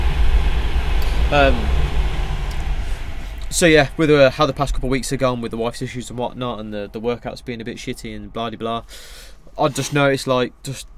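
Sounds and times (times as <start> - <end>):
train rumbling past: 0.0 - 8.4
speech: 1.3 - 1.8, 3.5 - 10.9.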